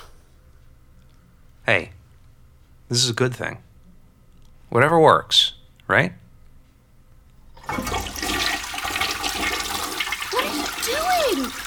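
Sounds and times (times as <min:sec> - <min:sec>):
speech: 0:01.7 - 0:02.0, 0:02.9 - 0:03.7, 0:04.7 - 0:06.2, 0:07.7 - 0:08.0
toilet flushing: 0:07.6 - 0:11.6.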